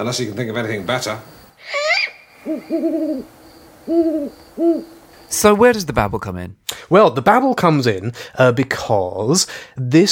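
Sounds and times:
speech: 0.0 - 1.8, 2.4 - 10.1
owl hooting: 0.8 - 5.6.

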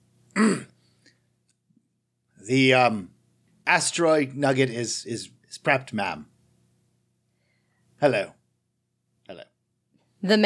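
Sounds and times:
faint low hum: 0.0 - 10.4
throat clearing: 0.3 - 0.8
speech: 0.4 - 0.7, 2.5 - 3.1, 3.7 - 6.3, 8.0 - 8.4, 9.3 - 9.5, 10.2 - 10.4.

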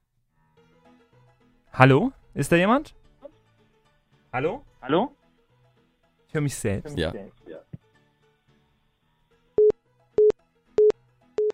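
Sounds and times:
speech: 1.8 - 3.0, 4.4 - 5.2, 6.3 - 7.7
telephone busy tone on an unanswered call: 9.6 - 11.5.

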